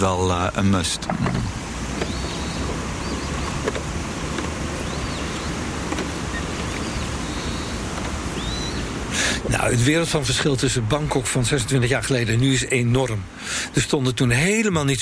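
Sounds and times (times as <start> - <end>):
speech: 0.0 - 1.6, 9.4 - 15.0
boat engines rumbling on a canal: 0.0 - 14.6
faint bird chirps and clicks: 2.0 - 3.6, 4.7 - 9.0.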